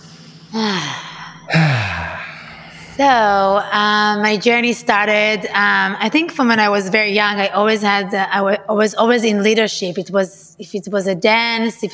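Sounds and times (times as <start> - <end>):
deep breath taken before answering a question: 0.0 - 3.2
speech: 3.0 - 11.9.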